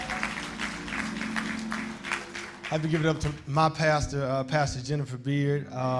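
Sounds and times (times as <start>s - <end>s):
audience applauding: 0.0s - 3.6s
speech: 2.7s - 5.9s.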